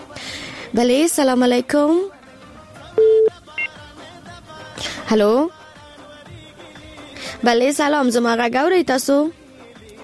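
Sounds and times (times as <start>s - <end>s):
speech: 0.7s - 2.2s, 5.1s - 5.6s, 7.4s - 9.4s
telephone line beeps as a call connects: 3.0s - 3.7s.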